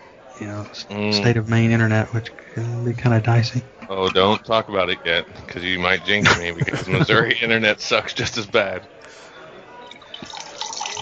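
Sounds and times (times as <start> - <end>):
speech: 0.4 - 9.2
laughter: 3.6 - 4.8, 5.5 - 8.8
liquid pouring into a cup: 9.8 - 10.9.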